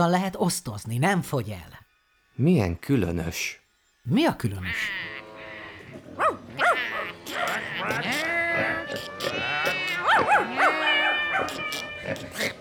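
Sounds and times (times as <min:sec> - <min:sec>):
speech: 0:00.0 - 0:01.8, 0:02.4 - 0:05.1
squeaking animal: 0:04.6 - 0:12.5
cawing animal: 0:05.0 - 0:12.5
barking animal: 0:06.2 - 0:08.0, 0:10.0 - 0:11.6
meowing animal: 0:06.2 - 0:12.2.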